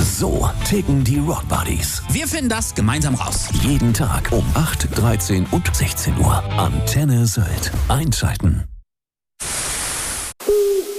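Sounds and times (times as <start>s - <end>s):
speech: 0.2s - 8.7s
loud burst of hiss-like static: 9.4s - 10.9s
owl hooting: 10.4s - 10.9s.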